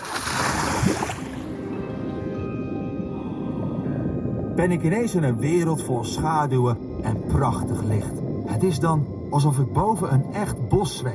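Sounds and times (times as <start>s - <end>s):
bright splash of a swimmer diving under water: 0.0s - 1.4s
steady underwater rumble in a kelp forest: 0.3s - 11.1s
faint underwater tonal hums: 1.1s - 11.1s
speech: 4.6s - 11.1s.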